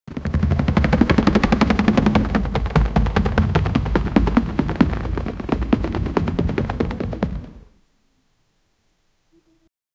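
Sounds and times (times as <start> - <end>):
loud thumping running: 0.1 - 7.8.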